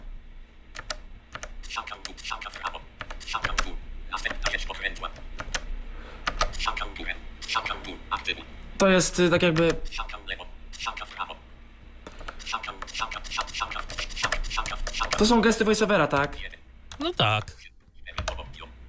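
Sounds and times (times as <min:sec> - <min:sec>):
low hum: 0:00.0 - 0:18.8
Logitech MX Mechanical computer keyboard typing: 0:00.7 - 0:07.8, 0:08.9 - 0:10.2, 0:12.1 - 0:18.6
speech: 0:07.6 - 0:10.1, 0:15.2 - 0:17.6.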